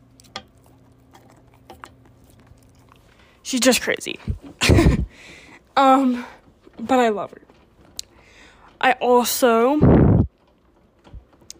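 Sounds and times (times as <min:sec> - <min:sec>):
Border Collie Corgi dog chewing: 0:00.0 - 0:04.4
steady low hum: 0:00.0 - 0:11.5
speech: 0:03.5 - 0:07.5, 0:08.8 - 0:10.1.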